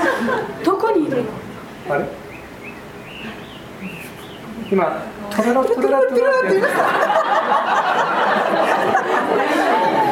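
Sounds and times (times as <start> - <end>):
laughter: 0.0 - 1.3, 5.6 - 10.0
steady hiss: 0.0 - 10.0
speech: 0.2 - 2.2, 4.7 - 9.5
faint thin bird whistles: 2.3 - 4.8.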